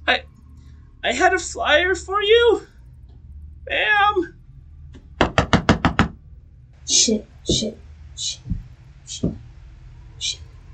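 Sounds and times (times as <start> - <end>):
speech: 0.1 - 0.3, 1.0 - 2.7, 3.7 - 4.4, 6.9 - 8.5, 9.1 - 9.4
knocking on a hard solid stone door: 5.2 - 6.2.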